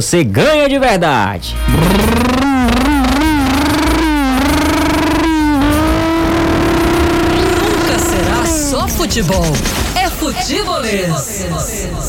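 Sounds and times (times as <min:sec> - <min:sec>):
speech: 0:00.0 - 0:02.8, 0:09.0 - 0:12.0
motorcycle engine revving: 0:01.6 - 0:09.0.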